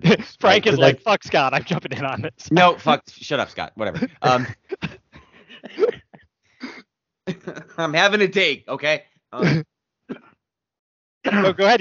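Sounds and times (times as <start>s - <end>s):
softer rougher throat-clearing cough: 0.0s - 1.0s, 4.0s - 7.9s, 9.4s - 10.3s
laughter: 0.0s - 3.0s, 3.8s - 8.2s, 9.4s - 9.6s, 11.3s - 11.7s
speech: 0.1s - 5.0s, 7.4s - 10.3s, 11.2s - 11.7s
loud cough: 4.0s - 7.8s, 9.4s - 10.3s.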